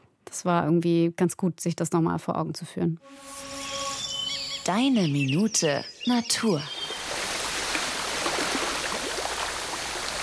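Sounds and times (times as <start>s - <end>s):
speech: 0.4s - 3.5s, 4.7s - 6.8s
bubbling geyser hot spring water: 6.8s - 10.2s.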